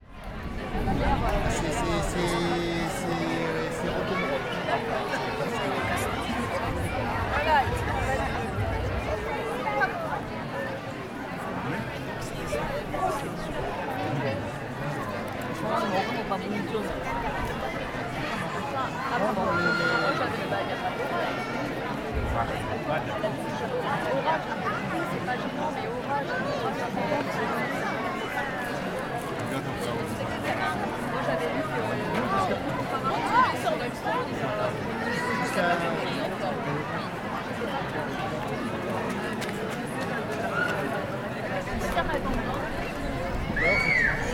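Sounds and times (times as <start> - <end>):
crowd outdoors: 0.0 - 44.3.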